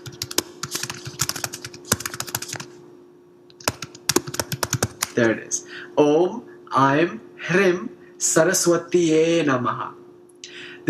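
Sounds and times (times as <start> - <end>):
typing on a computer keyboard: 0.0 - 2.7, 3.6 - 5.2
speech: 5.2 - 10.0.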